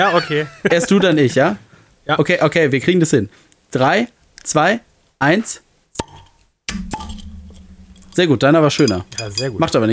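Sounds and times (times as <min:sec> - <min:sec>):
laughter: 0:00.0 - 0:01.2
speech: 0:00.0 - 0:05.6, 0:08.2 - 0:09.9
cola bottles popping open with glassy ring: 0:06.0 - 0:08.2.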